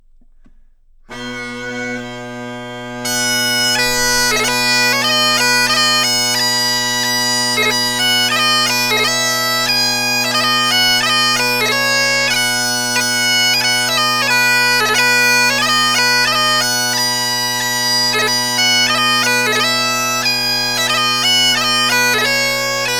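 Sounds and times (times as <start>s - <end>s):
bagpipes playing: 1.1s - 22.9s.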